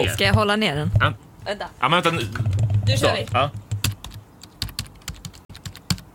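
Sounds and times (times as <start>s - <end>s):
speech: 0.0s - 3.6s
typing on a computer keyboard: 3.5s - 6.1s.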